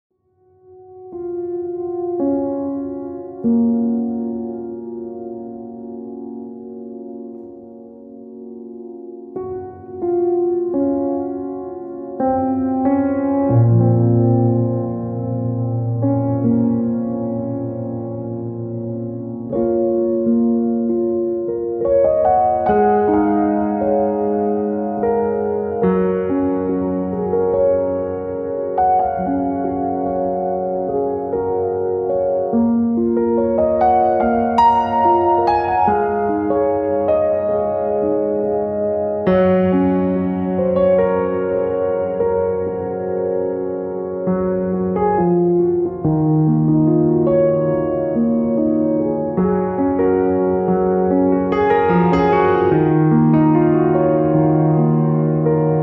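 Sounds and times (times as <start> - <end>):
deep meditation piano music: 0.2 - 55.8.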